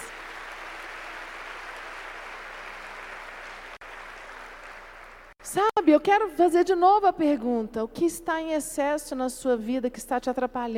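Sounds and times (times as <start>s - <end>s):
crowd applauding: 0.0s - 5.4s
speech: 5.5s - 10.7s.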